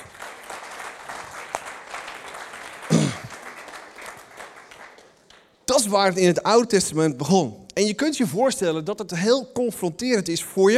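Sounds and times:
audience applause: 0:00.0 - 0:05.4
speech: 0:05.8 - 0:10.7.

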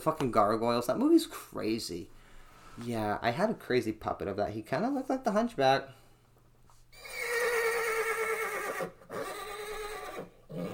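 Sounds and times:
speech: 0:00.0 - 0:02.2, 0:02.8 - 0:06.0
horse neighing: 0:07.0 - 0:10.7.

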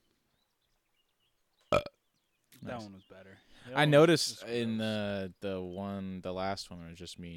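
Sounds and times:
person burping into the microphone: 0:01.7 - 0:02.0
speech: 0:02.6 - 0:07.3.

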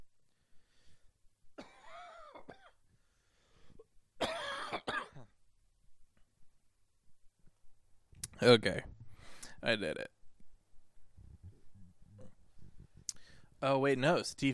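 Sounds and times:
harsh human coughing: 0:01.6 - 0:02.8, 0:04.2 - 0:05.4
speech: 0:08.4 - 0:08.9, 0:09.6 - 0:10.1, 0:13.6 - 0:14.5.

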